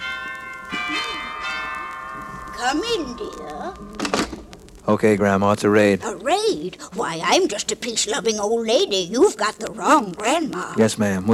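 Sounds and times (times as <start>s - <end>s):
doorbell ringing at a cottage door: 0.0s - 3.8s
speech: 2.6s - 4.2s, 4.9s - 11.3s.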